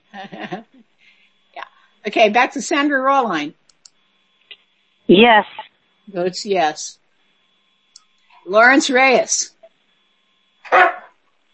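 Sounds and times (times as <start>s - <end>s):
speech: 0.2s - 1.2s, 2.0s - 3.6s, 5.1s - 7.0s, 8.5s - 9.5s, 10.7s - 11.0s
dog barking: 10.7s - 11.1s.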